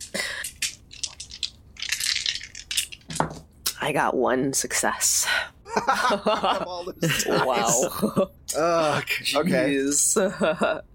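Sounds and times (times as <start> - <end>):
dice clattering across a hard surface in a tabletop role-playing game: 0.5 - 3.4
speech: 3.8 - 10.9
laughter: 5.7 - 9.1, 10.2 - 10.8.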